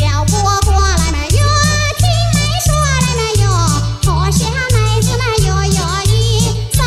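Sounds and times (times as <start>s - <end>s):
upbeat Chinese pop song sung as male-female duet over bass beat: 0.0s - 6.8s.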